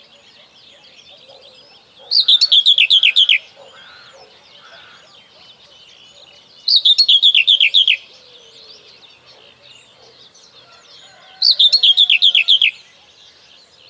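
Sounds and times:
Common whitethroat song: 0:00.0 - 0:13.8.

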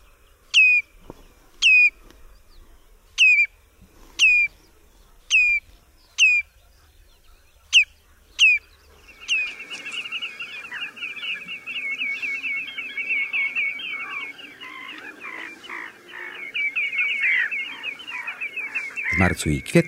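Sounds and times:
common redshank alarm call near the nest: 0:00.0 - 0:00.9, 0:01.6 - 0:02.5, 0:03.2 - 0:03.6, 0:04.2 - 0:19.8
common redshank loud rapid continuous chattering: 0:04.2 - 0:04.5, 0:05.2 - 0:06.6, 0:07.6 - 0:19.8
speech: 0:19.2 - 0:19.8.

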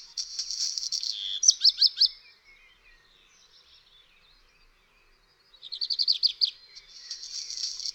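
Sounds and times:
black redstart singing: 0:00.0 - 0:07.9.

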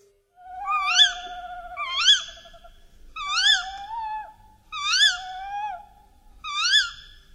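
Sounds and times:
tawny owl calling: 0:00.4 - 0:07.3.

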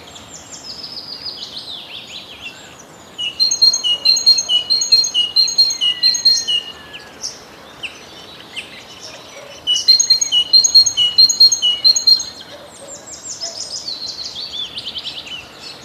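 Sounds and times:
great tit singing ringing repeated phrases: 0:00.0 - 0:15.8
other birds calling: 0:00.0 - 0:15.8.

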